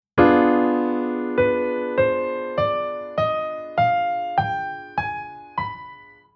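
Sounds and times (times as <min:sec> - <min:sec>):
harmonic minor chord scale: 0:00.2 - 0:06.3.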